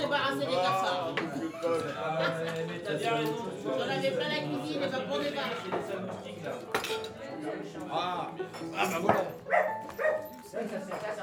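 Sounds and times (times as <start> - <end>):
speech: 0.3 - 0.8, 1.7 - 11.2
dog barking: 9.5 - 10.3.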